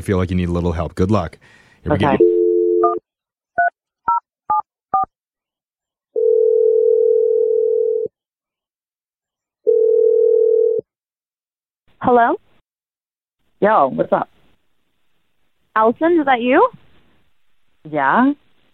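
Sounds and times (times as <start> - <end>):
speech: 0.0 - 2.3, 12.0 - 12.4, 13.6 - 14.4, 15.8 - 16.8, 17.8 - 18.4
long steady phone tones: 2.0 - 3.0, 6.2 - 8.1, 9.7 - 10.9.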